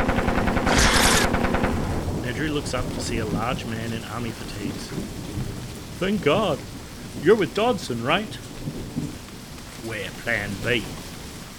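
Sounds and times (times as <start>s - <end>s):
machine gun fire: 0.0s - 2.3s
speech: 2.5s - 5.2s, 6.0s - 8.8s, 9.9s - 11.0s.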